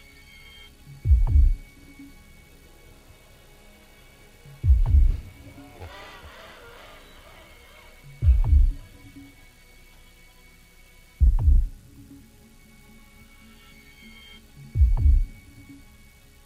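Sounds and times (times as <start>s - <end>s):
faint tonal hum: 0.0s - 16.4s
slow heartbeat thumps: 1.0s - 1.7s, 4.6s - 6.4s, 8.2s - 9.1s, 11.2s - 11.9s, 14.8s - 15.4s.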